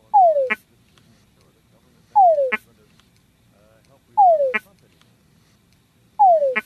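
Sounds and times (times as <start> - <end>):
male túngara frog mating call: 0.0 - 0.7, 2.1 - 2.8, 4.1 - 4.8, 6.1 - 6.6
faint low hum: 0.0 - 6.6.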